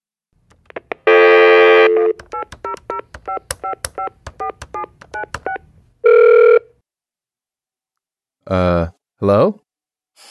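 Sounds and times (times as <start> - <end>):
telephone dial tone: 1.1 - 2.2, 6.0 - 6.7
telephone ringing on the line: 1.1 - 6.7
touch-tone keypad beeps: 1.6 - 5.6
speech: 8.5 - 9.6.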